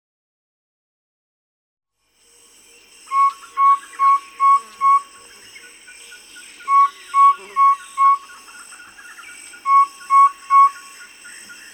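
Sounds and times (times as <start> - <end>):
white-spotted flufftail hooting call in Uganda: 3.1 - 5.1, 6.6 - 8.4, 9.6 - 11.0.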